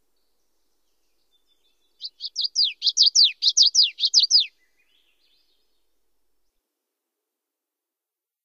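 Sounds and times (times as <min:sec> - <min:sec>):
common yellowthroat singing high sweeping notes in Western North America: 0:00.2 - 0:05.7.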